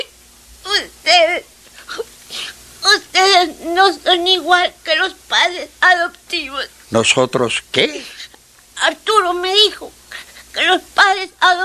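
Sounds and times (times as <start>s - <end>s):
child sobbing and whimpering: 0.7s - 6.0s, 7.9s - 11.6s
speech: 3.8s - 10.0s, 10.6s - 11.6s.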